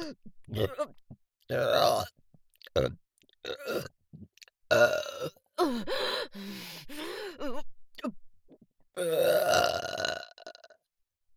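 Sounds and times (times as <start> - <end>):
speech: 0.0 - 0.9
long deep burps with groaning croaky tone: 0.5 - 5.4, 9.0 - 10.8.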